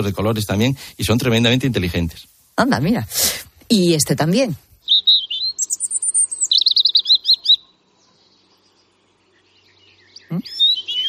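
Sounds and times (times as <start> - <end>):
speech: 0.0 - 4.7
European robin singing: 3.8 - 11.0.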